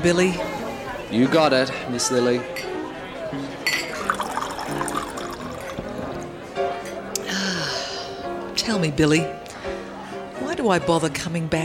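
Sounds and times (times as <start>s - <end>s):
speech: 0.0s - 0.5s, 1.1s - 2.7s, 3.3s - 4.9s, 8.7s - 9.4s, 10.6s - 11.6s
chatter in a busy room: 0.0s - 11.6s
glass clink: 2.6s - 2.9s, 3.6s - 6.0s
drink pouring into a glass: 3.7s - 6.5s.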